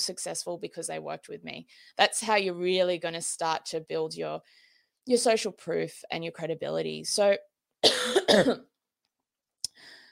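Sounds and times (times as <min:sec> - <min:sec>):
speech: 0:00.0 - 0:08.7
person coughing: 0:07.8 - 0:08.7.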